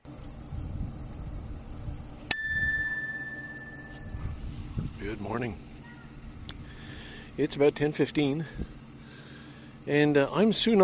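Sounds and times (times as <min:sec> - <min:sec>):
single bright bell strike: 0:02.3 - 0:04.1
speech: 0:05.0 - 0:05.7, 0:07.4 - 0:08.7, 0:09.8 - 0:10.8.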